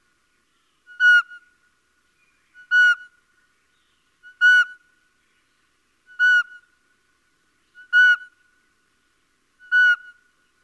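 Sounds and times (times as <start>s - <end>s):
little owl uttering a plaintive whistled call: 0.9s - 1.5s, 2.5s - 3.1s, 4.2s - 4.8s, 6.1s - 6.6s, 7.8s - 8.4s, 9.6s - 10.3s.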